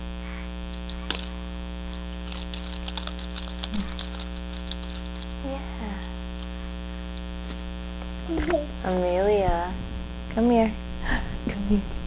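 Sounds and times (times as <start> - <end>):
steady low electrical hum: 0.0 - 12.0
keys jingling: 0.7 - 5.4, 6.0 - 6.5.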